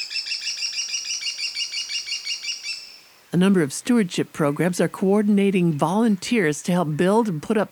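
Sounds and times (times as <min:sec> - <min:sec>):
kestrel shrill high calls: 0:00.0 - 0:03.1
speech: 0:03.3 - 0:07.6.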